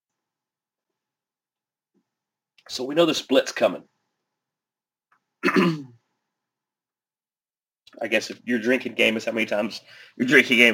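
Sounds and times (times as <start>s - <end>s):
speech: 2.7s - 3.9s, 5.5s - 5.9s, 8.0s - 10.7s
rough raspy throat clearing: 5.4s - 6.0s.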